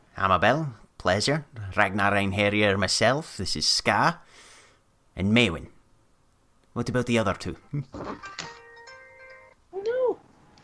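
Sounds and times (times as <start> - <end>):
speech: 0.2 - 4.2, 5.2 - 5.7, 6.8 - 8.6
phone ringtone: 8.2 - 9.6.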